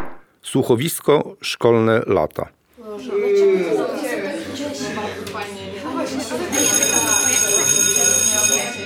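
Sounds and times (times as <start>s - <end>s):
speech: 0.6s - 5.5s
murmuring voices and chatter: 2.8s - 8.8s
electric school bell ringing: 6.5s - 8.8s.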